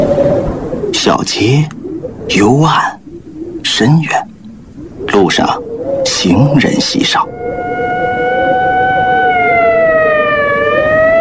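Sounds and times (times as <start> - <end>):
speech: 1.1 - 3.0, 3.6 - 4.3, 5.2 - 7.4
ambulance siren wailing in a two-tone sweep on a narrow street: 6.9 - 11.1.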